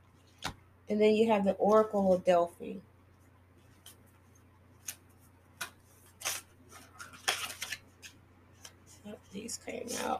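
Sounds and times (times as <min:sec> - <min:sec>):
faint steady hum: 0:00.0 - 0:10.1
speech: 0:00.9 - 0:02.9, 0:09.5 - 0:10.1
oracle cards pulled from a deck swishing and flicking: 0:04.8 - 0:08.8.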